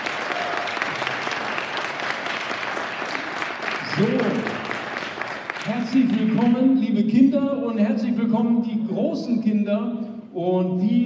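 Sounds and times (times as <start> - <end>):
audience applause for children: 0.0 - 6.6
speech: 4.0 - 4.5, 5.9 - 11.0.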